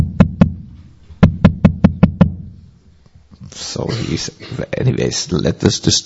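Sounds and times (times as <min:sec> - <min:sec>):
knocking on a door: 0:01.2 - 0:02.4
speech: 0:03.8 - 0:06.0.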